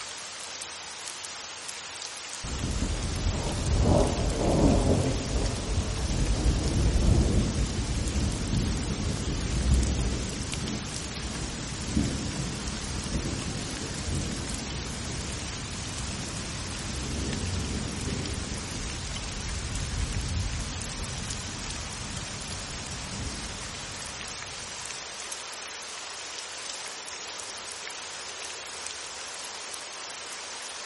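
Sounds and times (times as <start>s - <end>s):
steady hissing rain: 0.0s - 30.8s
deep rolling thunder rumble: 2.5s - 21.2s.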